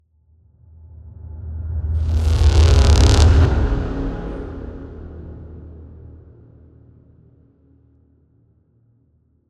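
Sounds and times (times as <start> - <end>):
cinematic transition: 1.8 - 5.9.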